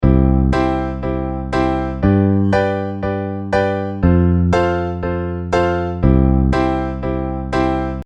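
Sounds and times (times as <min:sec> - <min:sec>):
piano rhythm: 0:00.0 - 0:08.0.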